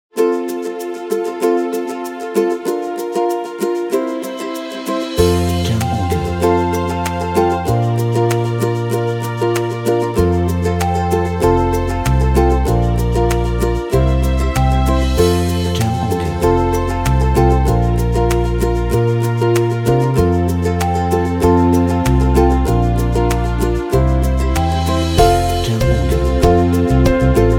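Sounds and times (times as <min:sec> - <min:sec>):
happy romantic acoustic music: 0:00.1 - 0:27.5.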